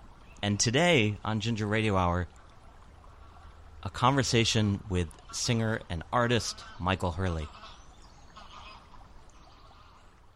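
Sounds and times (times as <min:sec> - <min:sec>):
speech: 0:00.4 - 0:02.4, 0:03.8 - 0:07.7
flock of geese honking: 0:05.2 - 0:10.2.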